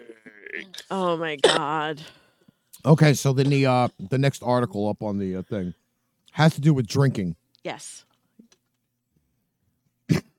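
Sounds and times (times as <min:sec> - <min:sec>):
speech: 0:00.6 - 0:02.2, 0:02.8 - 0:05.8, 0:06.4 - 0:08.1
sharp loud cough: 0:01.4 - 0:01.8, 0:10.1 - 0:10.3.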